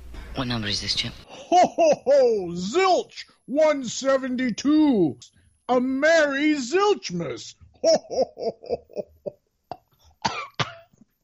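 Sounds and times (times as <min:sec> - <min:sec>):
speech: 0:00.4 - 0:09.1
laughter: 0:01.3 - 0:02.6, 0:07.8 - 0:09.4
person coughing: 0:09.7 - 0:10.9.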